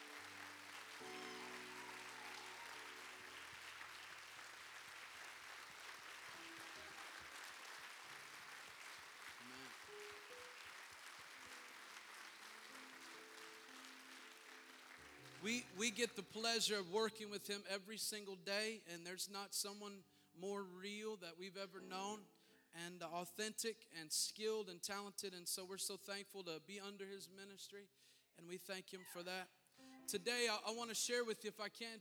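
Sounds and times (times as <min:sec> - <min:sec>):
church audience applauding their pastor: 0:00.0 - 0:16.4
speech: 0:15.4 - 0:31.9.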